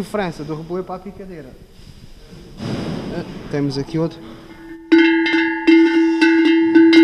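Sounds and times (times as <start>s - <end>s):
speech: 0.0s - 1.8s, 3.2s - 4.4s
sheet-metal cattle bell being shaken: 4.5s - 7.0s.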